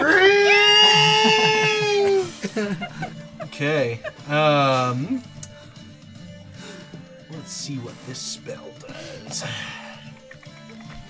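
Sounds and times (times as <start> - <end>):
voice imitating a robot droid's scream down a hallway: 0.0 - 2.3
laughter: 0.0 - 4.8
speech: 3.6 - 5.3, 7.5 - 9.9.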